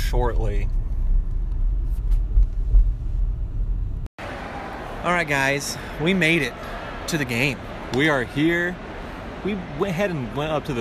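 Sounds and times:
road and engine drone inside a moving car in standstill traffic: 0.0s - 4.1s
speech: 0.1s - 0.8s, 5.0s - 8.8s, 9.4s - 10.7s.

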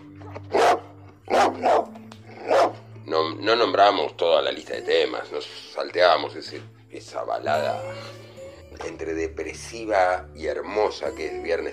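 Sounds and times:
dog barking: 0.5s - 2.9s
speech: 3.4s - 8.2s, 8.8s - 11.7s.

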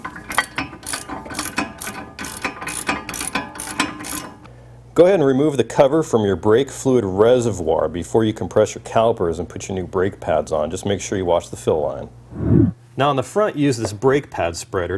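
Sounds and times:
ratchet wrench clicking while reinstalling a car's brake caliper bracket: 0.3s - 4.4s
speech: 5.0s - 14.9s.

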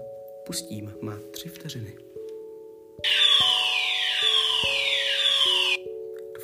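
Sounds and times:
speech: 0.5s - 2.1s, 3.0s - 3.2s
school fire alarm with downward-sweeping electronic tones: 3.0s - 5.8s
steady buzzing drone of a school fire alarm: 3.0s - 5.8s.

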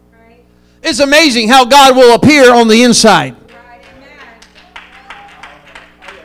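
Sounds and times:
low continuous hum: 0.0s - 6.2s
speech: 0.8s - 3.4s
one person clapping hands during a church sermon: 3.5s - 6.2s.

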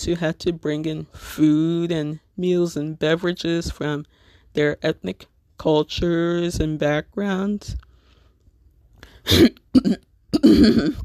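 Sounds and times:
speech: 0.0s - 7.8s, 9.2s - 11.0s
person coughing: 9.2s - 11.0s
person clearing throat: 9.3s - 11.0s.

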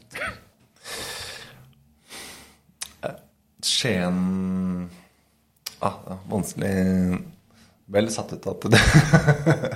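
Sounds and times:
person coughing to clear something caught in the throat: 0.1s - 0.5s
gasping inhales: 0.8s - 2.6s
speech: 3.0s - 5.0s, 5.8s - 9.7s.

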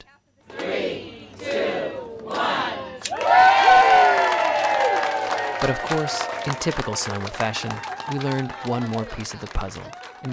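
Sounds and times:
outdoor crowd cheering and shouting at a local store opening: 0.0s - 10.3s
speech: 5.6s - 10.3s.

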